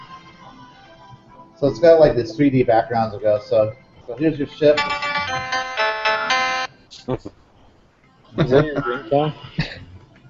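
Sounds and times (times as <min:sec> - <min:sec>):
speech: 0:01.6 - 0:05.6, 0:07.1 - 0:07.4, 0:08.3 - 0:09.6
electronic jingle from a Japanese import Dreamcast video game soundtrack: 0:04.8 - 0:06.7.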